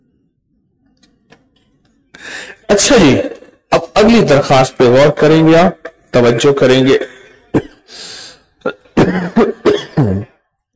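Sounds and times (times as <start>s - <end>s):
speech: 2.7s - 3.4s, 4.0s - 7.2s
person coughing: 6.8s - 7.9s, 8.6s - 10.3s
person clearing throat: 6.9s - 7.9s, 8.6s - 10.4s.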